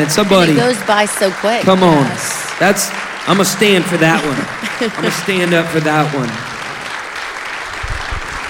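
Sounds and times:
speech: 0.0 - 6.5
crowd clapping: 0.0 - 8.4
laughter: 1.7 - 6.4.

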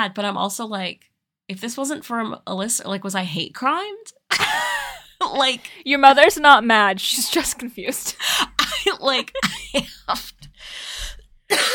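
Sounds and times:
speech: 0.0 - 4.6, 5.2 - 11.7
harsh dry coughs: 8.2 - 11.7.

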